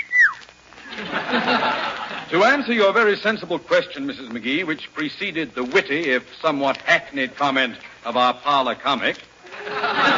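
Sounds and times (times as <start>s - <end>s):
human wolf whistle sweeping downward: 0.0s - 0.5s
audience laughter: 0.8s - 2.4s, 9.4s - 10.1s
speech: 1.3s - 10.1s.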